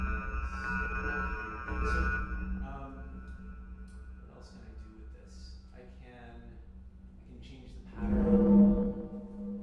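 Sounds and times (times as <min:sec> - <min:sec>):
keyboard synthesizer sine wave tone: 0:00.0 - 0:05.7, 0:07.9 - 0:09.6.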